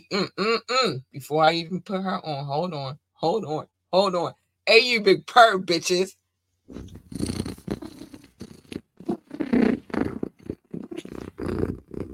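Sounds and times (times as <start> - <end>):
speech: 0.1 - 7.4
cat purring: 6.7 - 12.1.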